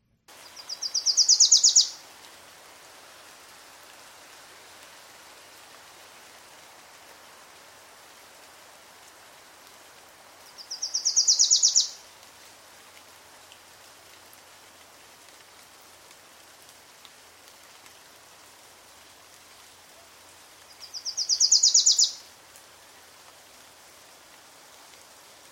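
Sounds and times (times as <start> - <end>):
steady hiss of noise: 0.0 - 25.5
Wilson's warbler singing rapid repeated high chattering notes: 0.6 - 1.9, 10.8 - 11.9, 21.1 - 22.1.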